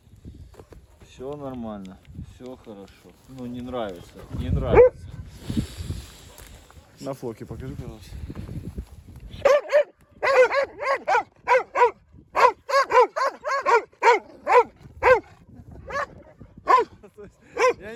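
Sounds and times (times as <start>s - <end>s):
speech: 1.2s - 5.6s, 7.0s - 8.4s
dog barking in high-pitched yelps reacting to a device: 4.7s - 5.0s, 9.4s - 17.0s, 17.6s - 17.8s.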